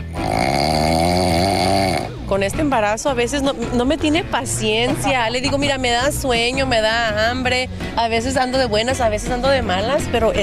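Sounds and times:
man snoring loudly: 0:00.0 - 0:02.3
speech: 0:02.4 - 0:10.4.

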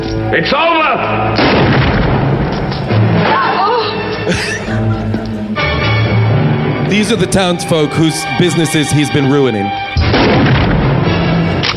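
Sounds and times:
dense noisy movie soundtrack: 0:00.0 - 0:11.7
speech: 0:00.3 - 0:01.4, 0:06.9 - 0:09.8
gunshot in a movie's final scene: 0:01.4 - 0:03.4, 0:10.0 - 0:11.7
laughter: 0:03.3 - 0:05.6.

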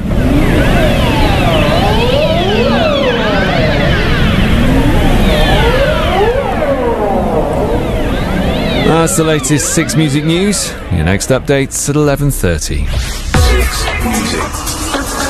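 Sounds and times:
Ross seal siren-like calls: 0:00.0 - 0:11.2
speech: 0:09.1 - 0:14.8.

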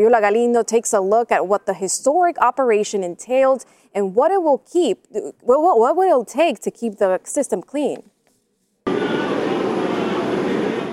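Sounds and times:
speech: 0:00.0 - 0:08.1
New York City subway train rumbling: 0:08.9 - 0:10.9.

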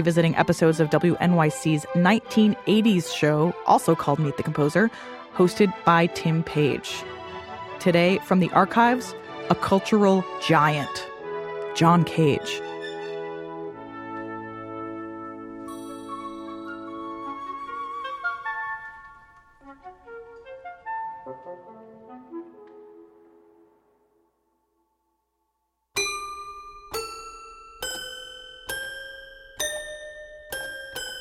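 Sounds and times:
speech: 0:00.0 - 0:07.1, 0:07.8 - 0:11.1, 0:11.8 - 0:12.6
avant-garde toy piano music: 0:15.7 - 0:17.6, 0:26.0 - 0:31.1.

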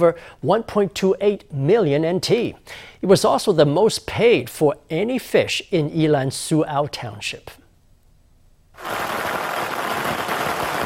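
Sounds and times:
speech: 0:00.0 - 0:07.6, 0:08.8 - 0:09.3
firecrackers exploding at the fish auction site in Su'ao Township: 0:08.8 - 0:10.8.

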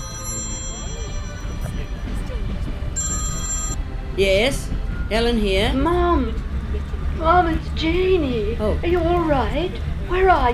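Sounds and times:
phone ringing in short electronic bursts: 0:00.0 - 0:02.2, 0:03.0 - 0:03.8
crowd murmur: 0:00.0 - 0:04.8, 0:05.6 - 0:10.5
station rumble: 0:00.0 - 0:10.5
speech: 0:04.2 - 0:06.4, 0:07.2 - 0:10.5.

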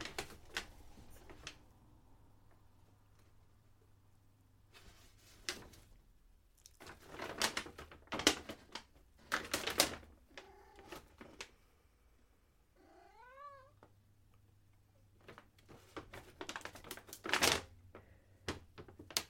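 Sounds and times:
paper bag on the floor crinkling underfoot: 0:00.0 - 0:01.6, 0:06.8 - 0:11.6, 0:15.2 - 0:19.2
cat meowing: 0:10.3 - 0:11.1, 0:12.8 - 0:13.9.

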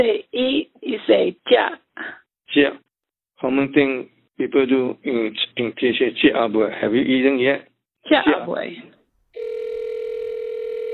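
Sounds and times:
speech: 0:00.0 - 0:02.8, 0:03.4 - 0:09.0
steady electronic telephone tone: 0:09.4 - 0:10.9.

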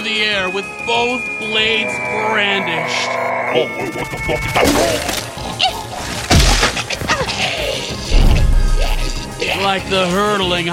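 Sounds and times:
speech: 0:00.1 - 0:05.8, 0:09.5 - 0:10.7
body smashing into a face at high speed: 0:06.0 - 0:06.9
loud booming crash: 0:08.1 - 0:09.6.

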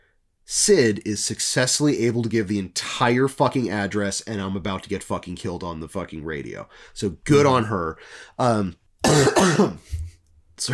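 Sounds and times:
speech: 0:00.5 - 0:10.0, 0:10.6 - 0:10.7
congested person clearing throat: 0:09.0 - 0:10.1
congested person coughing: 0:09.0 - 0:10.7.

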